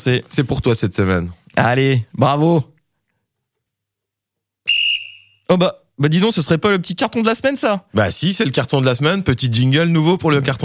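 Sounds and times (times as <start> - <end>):
speech: 0.0 - 2.8, 5.5 - 10.6
referee's whistle blast: 4.7 - 5.5.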